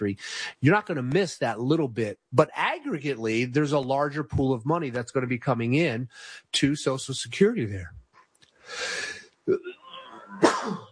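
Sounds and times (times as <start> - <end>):
speech: 0.0 - 8.0, 8.7 - 9.7
breathy intake before sneeze: 8.6 - 9.3
person sneezing: 8.8 - 10.9.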